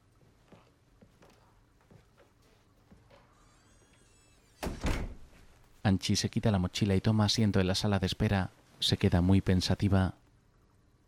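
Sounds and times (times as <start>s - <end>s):
door shutting in a psychiatric consulting room: 3.2s - 5.5s
speech: 5.9s - 10.2s.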